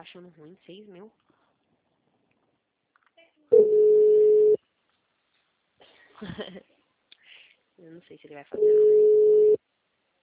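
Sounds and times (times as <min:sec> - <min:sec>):
speech: 0:00.0 - 0:01.4, 0:06.2 - 0:06.7, 0:07.8 - 0:09.4
telephone line tone after a dropped call: 0:03.5 - 0:04.6, 0:08.6 - 0:09.6.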